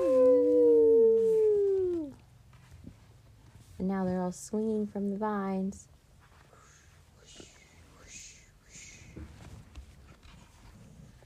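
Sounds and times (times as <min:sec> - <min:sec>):
child imitating a wolf or dog howling at the moon: 0:00.0 - 0:02.2
speech: 0:04.3 - 0:06.0.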